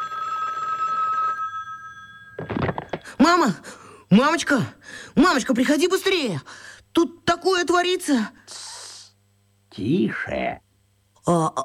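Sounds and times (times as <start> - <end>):
telephone bell ringing: 0.0 - 2.7
speech: 3.2 - 8.7, 9.8 - 10.6, 11.2 - 11.6.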